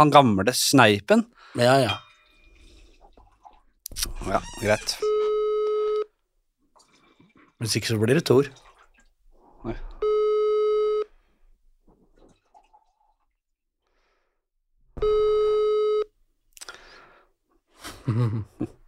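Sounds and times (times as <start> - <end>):
speech: 0.0 - 2.0, 4.0 - 5.2, 7.6 - 8.6, 9.6 - 9.9, 18.1 - 18.8
telephone ringback tone while placing a call: 5.0 - 6.1, 10.0 - 11.1, 15.0 - 16.1.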